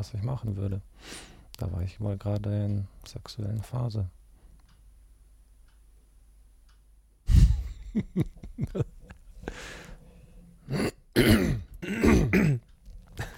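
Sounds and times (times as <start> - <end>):
speech: 0.0 - 4.2, 7.9 - 9.8, 10.7 - 11.6
person breathing: 1.0 - 1.5, 7.3 - 7.8, 9.3 - 10.7
repeated throat clearing: 10.7 - 12.6.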